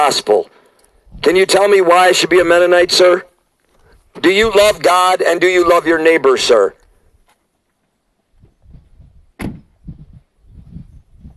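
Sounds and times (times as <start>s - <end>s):
speech: 0.0s - 0.5s, 1.2s - 3.3s, 4.2s - 6.8s
car door shutting: 9.4s - 9.7s.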